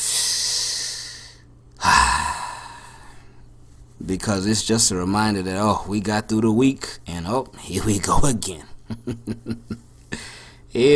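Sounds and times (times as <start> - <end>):
person taking a deep breath: 0.0 - 3.5, 10.1 - 10.7
speech: 4.0 - 9.9, 10.8 - 10.9.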